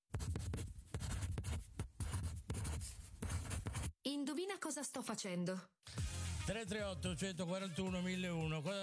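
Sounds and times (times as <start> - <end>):
pen or pencil scratching across a sheet of paper: 0.0 - 4.0
speech: 4.1 - 8.8.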